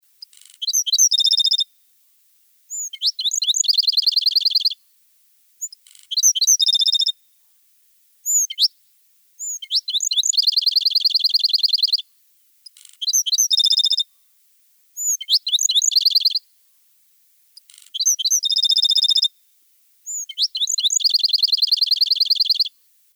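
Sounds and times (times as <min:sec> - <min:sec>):
black-throated sparrow: 0:00.2 - 0:01.6, 0:02.7 - 0:04.8, 0:05.6 - 0:07.1, 0:08.2 - 0:08.7, 0:09.4 - 0:12.0, 0:12.6 - 0:14.0, 0:15.0 - 0:16.4, 0:17.6 - 0:19.3, 0:20.0 - 0:22.7.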